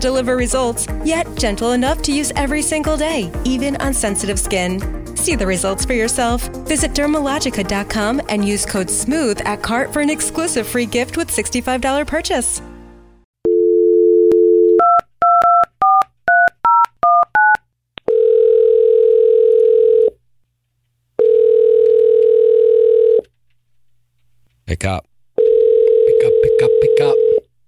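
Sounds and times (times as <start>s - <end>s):
speech: 0.0s - 12.7s, 24.7s - 25.1s, 26.3s - 27.2s
telephone dial tone: 13.4s - 16.0s, 16.7s - 20.2s, 21.2s - 23.2s, 25.4s - 27.5s
phone keypad beeps: 14.3s - 17.6s.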